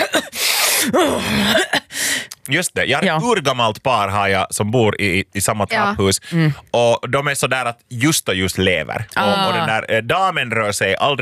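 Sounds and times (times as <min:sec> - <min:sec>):
voice imitating a man coughing: 0:00.0 - 0:01.9
voice imitating a man sniffling: 0:00.1 - 0:02.3
speech: 0:00.9 - 0:01.8, 0:02.5 - 0:11.2.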